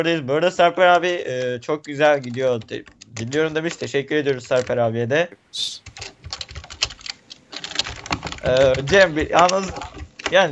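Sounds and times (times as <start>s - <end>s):
speech: 0.0s - 6.1s, 8.4s - 10.5s
heavy typing on a computer keyboard: 1.2s - 4.8s, 5.8s - 10.5s.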